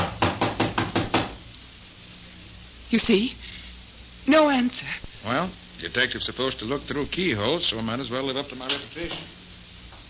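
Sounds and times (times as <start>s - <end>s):
knocking on a locked wooden door: 0.0s - 1.4s
speech: 2.9s - 3.4s, 4.2s - 9.4s.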